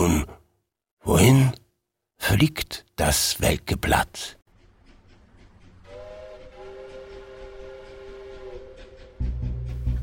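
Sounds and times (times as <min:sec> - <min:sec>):
speech: 0:01.0 - 0:01.6, 0:02.2 - 0:04.4
passing train whistle: 0:05.8 - 0:09.6.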